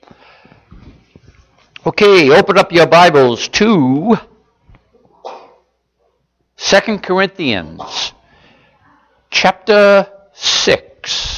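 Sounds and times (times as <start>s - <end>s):
speech: 1.8s - 4.3s, 6.8s - 8.0s, 9.4s - 10.9s
person in the audience sneezing during a Bible reading: 5.1s - 5.7s, 7.8s - 8.2s.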